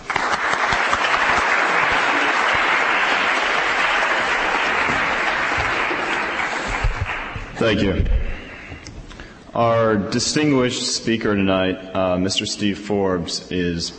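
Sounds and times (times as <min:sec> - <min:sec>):
sizable audience applauding for a speaker: 0:00.0 - 0:07.8
speech: 0:07.6 - 0:08.3, 0:09.6 - 0:13.9.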